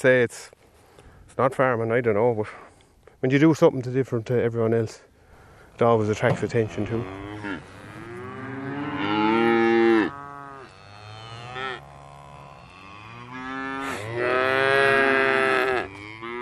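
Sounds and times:
speech: 0.0s - 0.6s, 1.4s - 5.1s, 5.8s - 7.7s
herd of Dexter cattle mooing: 6.3s - 16.4s.

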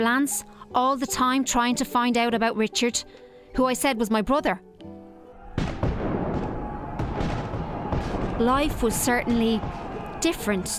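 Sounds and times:
speech: 0.0s - 4.7s, 8.4s - 10.7s
army cannon fire booming: 5.5s - 10.7s.

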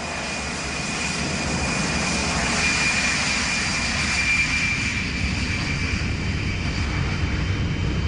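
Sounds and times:
Aer Lingus jet airliner engine droning: 0.0s - 8.0s.

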